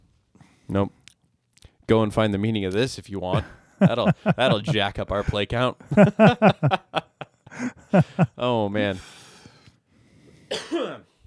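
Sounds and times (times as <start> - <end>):
speech: 0.7 - 1.0, 1.9 - 7.0, 7.9 - 9.2
laughter: 3.3 - 8.4
harsh raspy cough: 10.5 - 11.1.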